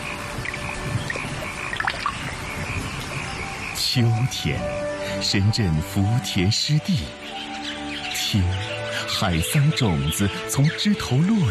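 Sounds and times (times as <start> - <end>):
raindrops splashing on early rice paddy: 0.0 - 4.2
small splashes and drips: 0.0 - 4.4
speech: 3.9 - 7.5, 8.3 - 11.4.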